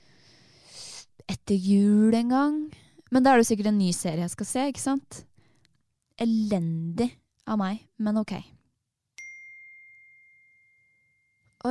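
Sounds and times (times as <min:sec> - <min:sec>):
speech: 0:01.5 - 0:05.3, 0:06.2 - 0:08.6
phone message notification ding: 0:09.2 - 0:11.6.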